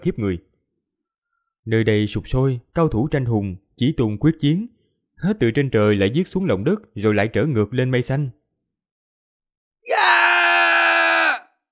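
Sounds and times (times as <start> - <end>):
speech: 0.0 - 0.5, 1.6 - 8.4
man screaming loudly in pain: 9.9 - 11.6.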